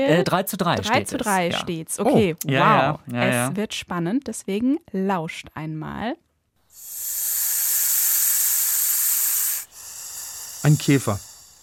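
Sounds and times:
speech: 0:00.0 - 0:06.2, 0:10.6 - 0:11.3
snake hissing: 0:06.7 - 0:11.6.

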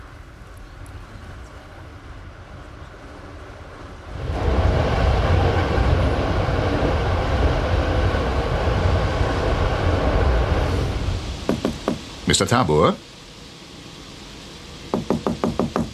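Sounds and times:
train with sleeping cars rumbling along the rails heard from inside a carriage: 0:00.0 - 0:15.9
speech: 0:12.3 - 0:13.2.

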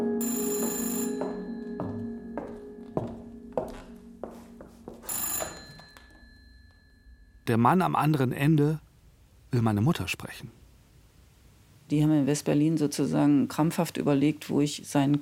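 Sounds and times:
telephone bell ringing: 0:00.2 - 0:02.6, 0:05.0 - 0:07.5
speech: 0:07.5 - 0:08.9, 0:09.5 - 0:10.6, 0:11.9 - 0:15.2.

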